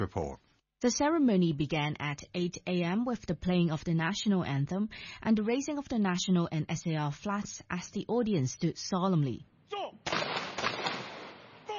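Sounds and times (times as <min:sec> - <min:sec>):
speech: 0:00.0 - 0:10.4
ceremonial gun salute fired by a police guard unit at a memorial ceremony: 0:10.0 - 0:11.7.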